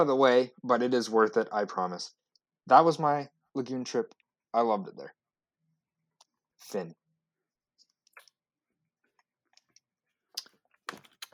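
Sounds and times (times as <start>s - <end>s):
speech: 0.0s - 5.2s, 6.6s - 7.0s
person sipping water: 10.4s - 11.3s
soft mouth clicks: 10.4s - 11.3s.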